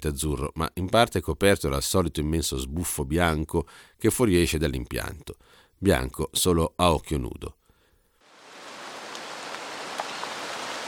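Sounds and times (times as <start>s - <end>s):
speech: 0.0s - 7.6s
heavy rain: 8.3s - 10.8s.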